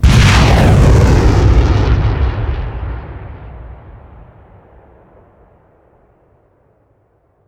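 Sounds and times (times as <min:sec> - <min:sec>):
rocket trail whooshing: 0:00.0 - 0:05.1.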